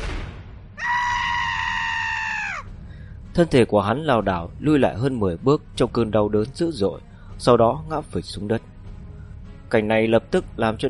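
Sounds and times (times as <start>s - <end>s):
young man screaming in agony: 0.8s - 2.7s
speech: 3.4s - 8.7s, 9.7s - 10.8s.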